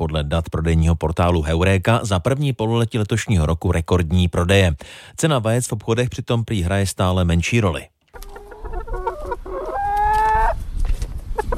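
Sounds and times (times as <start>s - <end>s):
speech: 0.2s - 8.2s
chickens clucking in a backyard coop in a family house garden in Telč: 8.1s - 11.5s.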